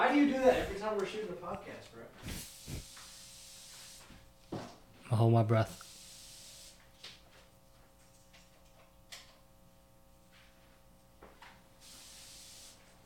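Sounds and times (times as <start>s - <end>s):
speech: 0.2s - 2.8s, 5.1s - 5.8s
aerosol spray hissing: 2.2s - 4.3s, 5.7s - 6.8s, 11.8s - 13.0s.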